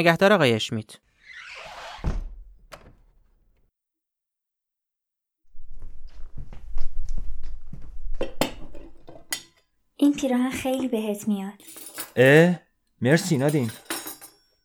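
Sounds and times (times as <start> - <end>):
speech: 0.0 - 1.0, 10.0 - 13.9
plates being set out on a table for lunch: 8.2 - 9.6, 11.6 - 14.6.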